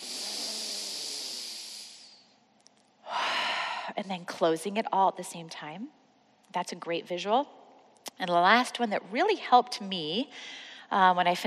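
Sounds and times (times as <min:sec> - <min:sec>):
long deep full breath into belly and chest: 0:00.0 - 0:02.3, 0:03.0 - 0:04.0, 0:10.3 - 0:10.9
speech: 0:03.9 - 0:07.6, 0:08.2 - 0:11.4.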